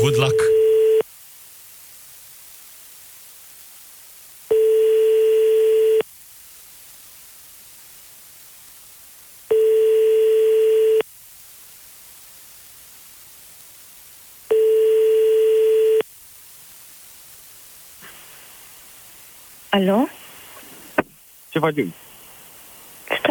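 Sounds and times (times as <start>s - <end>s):
speech: 0.0s - 0.5s, 19.8s - 20.2s, 21.6s - 22.0s
telephone ringback tone of a number dialed from a radio studio: 0.0s - 1.0s, 4.5s - 6.0s, 9.5s - 11.0s, 14.5s - 16.0s
constant faint hiss: 0.0s - 23.2s.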